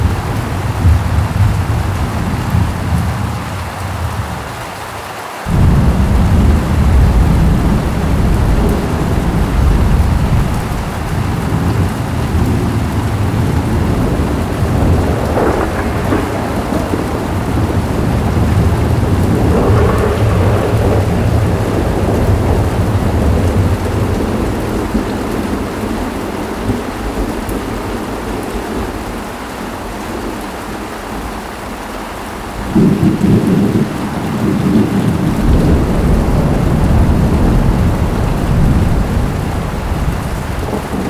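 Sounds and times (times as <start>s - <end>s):
dense constant rain hiss of a steady rainstorm: 0.0s - 41.0s
thunder rolling heavily over a rainstorm: 5.5s - 25.6s, 32.6s - 41.0s.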